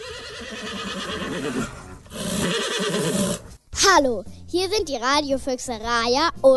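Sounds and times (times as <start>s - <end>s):
horse neighing: 0.0s - 3.6s
speech: 0.5s - 1.8s, 3.9s - 6.5s.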